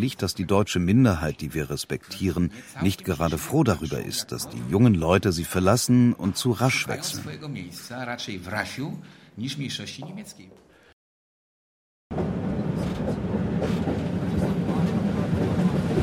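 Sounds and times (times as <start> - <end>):
speech: 0.0 - 10.7
tram rumbling and rattling along its tracks: 12.1 - 16.0.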